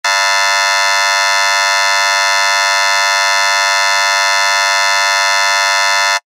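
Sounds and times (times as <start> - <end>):
long theatre or hall curtain-up buzzer without reverb: 0.0 - 6.3.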